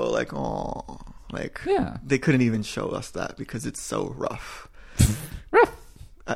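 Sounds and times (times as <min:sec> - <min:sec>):
speech: 0:00.0 - 0:05.8
person imitating a dog bark: 0:05.5 - 0:06.0.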